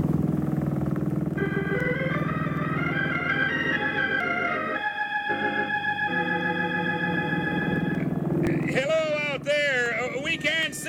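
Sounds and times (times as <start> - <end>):
boat motor starting and running: 0.0 - 10.8
person calling out: 8.5 - 10.8.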